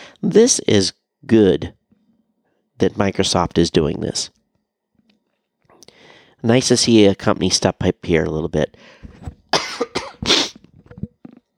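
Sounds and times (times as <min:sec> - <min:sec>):
speech: 0:00.2 - 0:01.8, 0:02.8 - 0:04.4, 0:06.4 - 0:09.4
man coughing harshly: 0:09.5 - 0:10.7.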